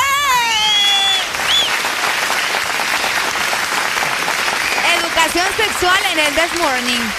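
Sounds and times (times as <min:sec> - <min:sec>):
steady crowd applause: 0:00.0 - 0:07.1
high whistling or squealing tone: 0:00.6 - 0:01.8
speech: 0:05.4 - 0:07.1.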